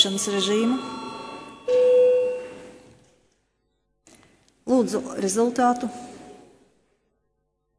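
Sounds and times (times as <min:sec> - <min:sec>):
speech: 0:00.0 - 0:01.0, 0:04.8 - 0:06.1
electronic parliamentary bell rung before a vote: 0:00.0 - 0:02.9.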